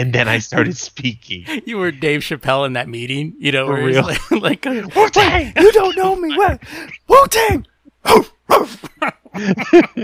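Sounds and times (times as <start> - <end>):
speech: 0.0 - 10.0
laughter: 3.8 - 6.8, 8.7 - 10.0
person imitating a dog barking: 8.0 - 8.8.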